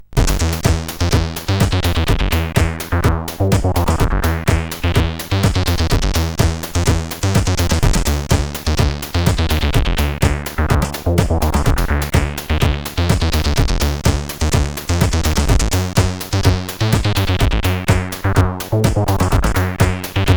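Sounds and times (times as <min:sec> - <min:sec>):
fake rave music on a CSG8580R5 sound chip: 0:00.1 - 0:20.3.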